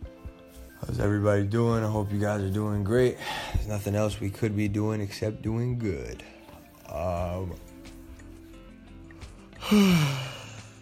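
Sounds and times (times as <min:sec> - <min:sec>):
speech: 0:00.8 - 0:06.3, 0:06.9 - 0:07.7, 0:09.7 - 0:10.3
person yawning: 0:09.6 - 0:10.7.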